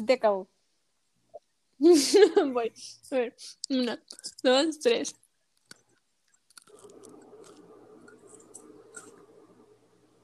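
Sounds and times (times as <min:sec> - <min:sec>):
speech: 0:00.0 - 0:00.6, 0:01.8 - 0:05.2
crunchy chewing of food: 0:06.5 - 0:09.2.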